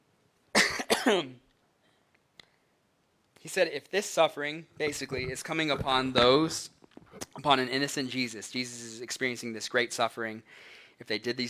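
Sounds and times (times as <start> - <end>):
person coughing harshly: 0.6 - 1.4
speech: 1.0 - 1.4, 3.4 - 11.4.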